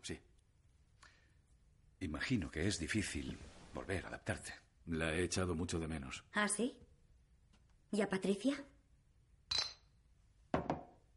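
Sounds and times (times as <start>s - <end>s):
speech: 0.0s - 0.3s, 2.0s - 6.8s, 7.9s - 8.7s
sharp glass clinks as a woman serves herself a drink at home: 9.5s - 10.0s.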